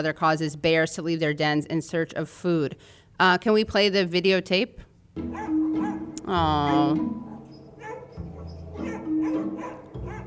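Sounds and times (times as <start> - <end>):
speech: 0.0 - 5.6, 6.3 - 7.3
excited dogs barking and yipping: 5.2 - 10.2.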